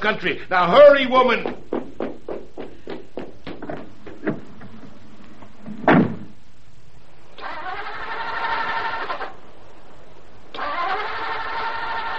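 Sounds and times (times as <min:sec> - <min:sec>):
speech: 0:00.0 - 0:01.6
loud door-like thump: 0:05.8 - 0:06.4
car engine cranking without starting with choke pulled out: 0:07.4 - 0:09.4, 0:10.5 - 0:12.1.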